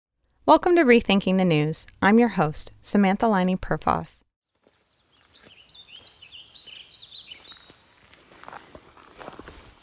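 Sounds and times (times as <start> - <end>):
speech: 0.5 - 4.2
footsteps crunching through a natural forest: 4.5 - 9.8
birds chirping: 4.6 - 8.2.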